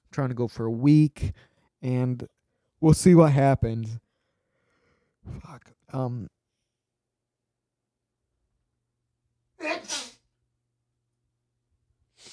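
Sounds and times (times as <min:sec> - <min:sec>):
speech: 0:00.2 - 0:04.0, 0:05.2 - 0:06.4
person sneezing: 0:09.7 - 0:10.2.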